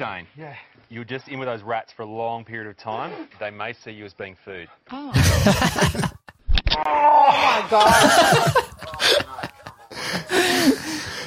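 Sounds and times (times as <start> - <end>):
speech: 0.0 - 6.2, 6.8 - 8.6
laughter: 5.2 - 6.3, 7.3 - 11.2
man gasping in pain as a python bites his face: 8.9 - 11.2.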